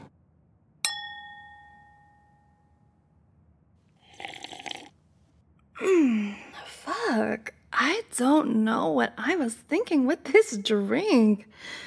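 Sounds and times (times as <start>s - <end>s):
glasses clinking in a toast: 0.9s - 2.4s
speech: 7.3s - 11.8s.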